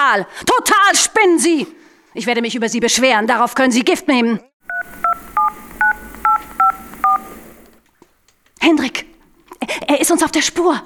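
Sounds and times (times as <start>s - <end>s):
speech: 0.1s - 4.5s, 8.6s - 9.1s, 9.9s - 10.8s
mobile phone keypad dialing tones: 4.7s - 7.8s.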